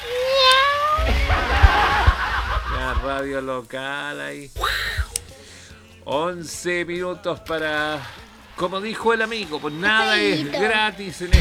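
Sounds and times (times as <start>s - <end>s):
cat meowing: 0.0s - 3.4s, 9.2s - 11.4s
laughter: 0.0s - 11.4s
soft bumps: 0.0s - 11.4s
speech: 3.1s - 4.9s, 6.1s - 11.4s.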